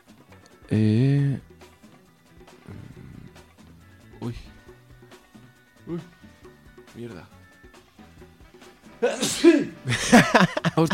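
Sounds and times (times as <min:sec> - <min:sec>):
speech: 0:00.7 - 0:01.5, 0:04.3 - 0:04.5, 0:05.9 - 0:06.1, 0:09.0 - 0:10.9
person sneezing: 0:09.0 - 0:09.8
laughter: 0:09.0 - 0:10.9.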